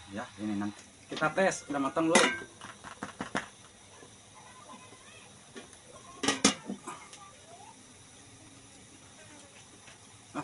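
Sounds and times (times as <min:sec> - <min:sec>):
speech: 0:00.1 - 0:02.7
metal kitchenware clattering: 0:02.1 - 0:02.5
strainer clanking on a steaming pot of sticky rice: 0:06.2 - 0:06.7.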